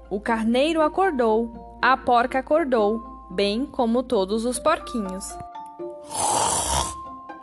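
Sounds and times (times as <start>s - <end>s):
speech: 0.1s - 6.6s
dog snoring loudly: 6.1s - 7.0s.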